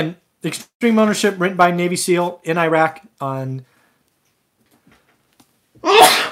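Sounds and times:
speech: 0.0s - 3.7s, 5.8s - 6.2s
person sneezing: 5.8s - 6.3s.

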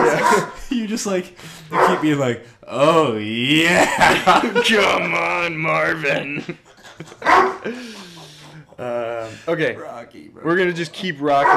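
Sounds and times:
dog barking: 0.0s - 0.6s, 1.7s - 2.0s, 7.2s - 7.7s, 11.3s - 11.5s
laughter: 0.0s - 2.2s, 2.9s - 11.5s
speech: 0.8s - 8.0s, 8.8s - 11.5s.

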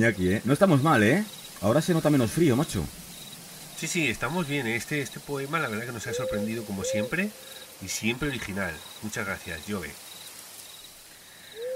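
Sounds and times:
speech: 0.0s - 3.0s, 3.8s - 10.0s
faint steady insect-like hiss of night ambience: 0.0s - 11.7s
low owl hoot: 5.7s - 7.8s, 11.6s - 11.7s.

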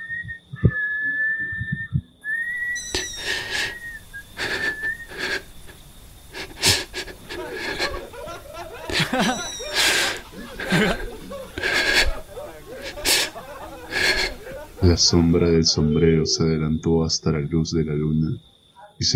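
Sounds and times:
person whistling a thin steady tune: 0.0s - 5.1s
breathy wheezing chuckles and laughter-like bursts: 2.8s - 14.9s
speech: 14.9s - 19.1s.

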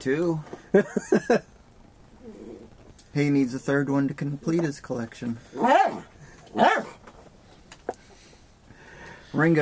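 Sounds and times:
speech: 0.0s - 1.5s, 3.1s - 6.8s, 9.4s - 9.5s
dog barking: 5.6s - 7.0s.

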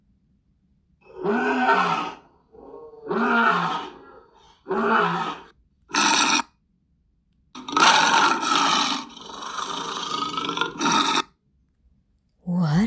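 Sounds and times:
lion roaring: 1.0s - 6.5s, 7.6s - 11.3s.

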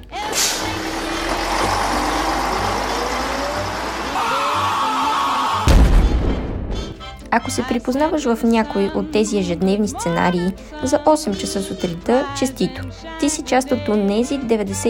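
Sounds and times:
busy city street traffic at morning rush hour: 0.0s - 5.6s
bus engine droning: 0.0s - 5.9s
air brakes hissing: 0.2s - 4.1s
sudden loud thump and burst of noise: 5.7s - 6.9s
speech: 7.4s - 14.8s.

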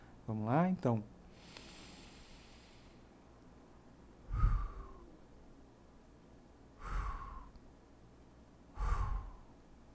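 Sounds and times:
speech: 0.3s - 1.1s
soft airy breaths during a guided breathing exercise: 1.2s - 5.2s, 6.7s - 7.7s, 8.7s - 9.7s.

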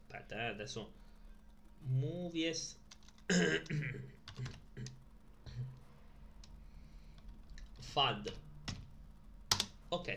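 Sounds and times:
speech: 0.3s - 1.1s, 1.8s - 4.9s, 7.9s - 8.5s, 9.9s - 10.1s
typing on a computer keyboard: 4.3s - 4.6s, 9.5s - 9.7s.

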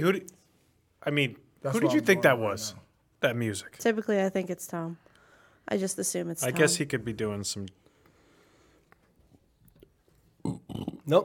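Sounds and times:
speech: 0.0s - 0.4s, 1.0s - 5.0s, 5.6s - 7.8s, 11.1s - 11.2s
throaty burp: 10.4s - 11.2s.

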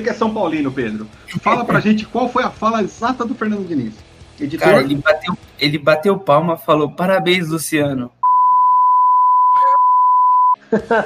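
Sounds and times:
speech: 0.0s - 8.2s, 10.7s - 11.0s
laughter: 1.3s - 2.0s, 10.6s - 11.0s
voice: 1.3s - 2.0s, 4.6s - 6.2s, 9.5s - 9.8s
censor bleep tone over a spoken word: 8.2s - 10.6s.

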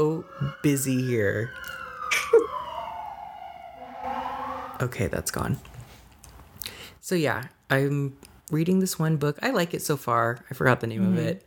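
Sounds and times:
speech: 0.0s - 2.5s, 4.8s - 5.7s, 7.1s - 11.4s
emergency vehicle siren passing outside on a busy street: 0.0s - 5.6s
brief noisy burst: 3.6s - 5.0s.

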